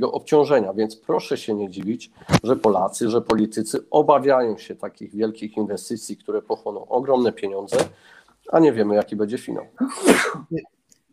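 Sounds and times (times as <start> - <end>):
speech: 0.0 - 10.8
member of parliament sneezing during a debate: 9.8 - 10.6.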